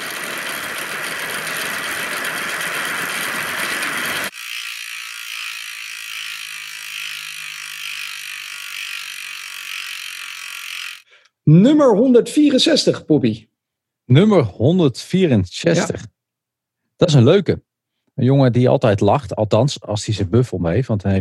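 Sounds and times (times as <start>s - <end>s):
mechanical hum: 0.0s - 11.0s
prize wheel spun for a number draw, ratchet clicking: 0.0s - 11.1s
speech: 11.6s - 13.5s, 14.1s - 16.1s, 17.0s - 21.1s.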